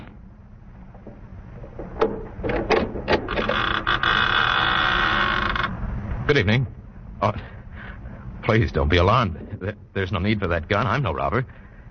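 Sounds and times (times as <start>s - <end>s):
massive oak door of a chateau opening: 0.9s - 5.7s
speech: 6.3s - 7.5s, 8.5s - 11.6s.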